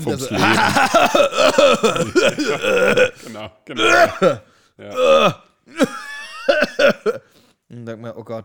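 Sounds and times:
speech: 0.0 - 6.0, 6.8 - 8.4
person imitating rapid strained laughter: 0.3 - 3.2
person coughing and groaning after laughing: 0.3 - 7.3.

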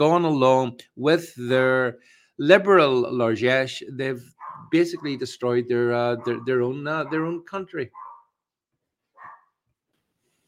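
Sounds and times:
speech: 0.0 - 8.0
dog barking loudly in the background: 4.3 - 5.2, 6.1 - 8.4, 9.2 - 9.6.

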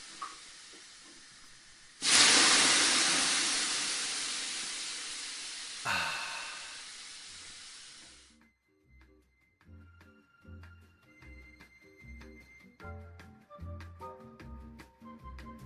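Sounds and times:
steam hissing in a steam room: 0.0 - 8.3.

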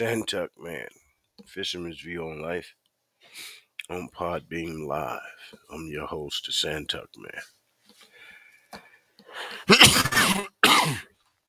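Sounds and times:
speech: 0.0 - 7.6, 8.7 - 11.1
person coughing with a rough throaty buildup and harsh hacking bursts: 9.4 - 11.1.

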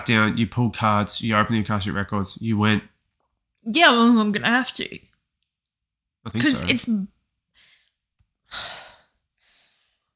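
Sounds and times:
speech: 0.0 - 2.9, 3.6 - 5.1, 6.2 - 7.7, 8.5 - 8.8
person out of breath breathing hard: 8.5 - 10.1.

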